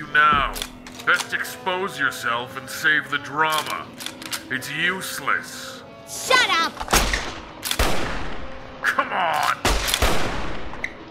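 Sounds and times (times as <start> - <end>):
speech: 0.2 - 7.1, 8.8 - 10.4
gunshots: 7.0 - 8.5, 9.6 - 10.7.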